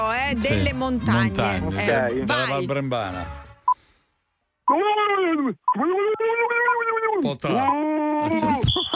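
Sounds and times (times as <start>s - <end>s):
speech: 0.0s - 3.4s, 7.2s - 8.9s
person imitating a mountain gorilla call: 4.7s - 8.6s.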